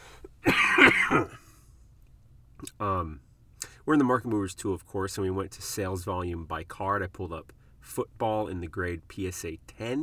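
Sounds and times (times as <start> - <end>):
harsh throat clearing: 0.4 - 1.5
raspy cough: 0.4 - 1.5
speech: 3.9 - 10.0.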